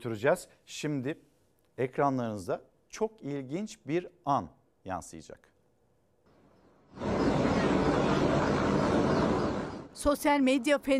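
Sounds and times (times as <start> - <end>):
speech: 0.0 - 5.5, 10.0 - 10.9
helicopter rotor and engine roar: 7.0 - 10.0.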